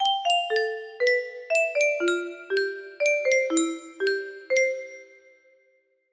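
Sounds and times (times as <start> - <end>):
ringtone melody on a music box: 0.0 - 5.5.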